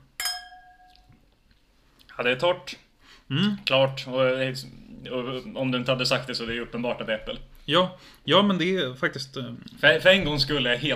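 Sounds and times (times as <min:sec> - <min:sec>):
wine glasses clinking in a toast: 0:00.2 - 0:01.1
speech: 0:02.2 - 0:10.9.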